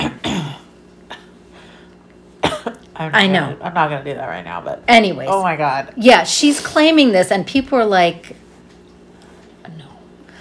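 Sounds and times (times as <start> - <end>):
person coughing: 0.0 - 1.4, 2.4 - 2.8
throat clearing: 0.0 - 1.4
speech: 3.0 - 8.4.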